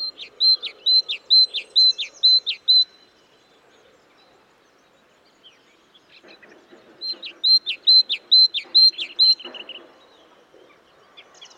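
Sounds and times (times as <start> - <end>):
great tit Parus major whistling: 0.0 - 3.0, 7.0 - 9.8.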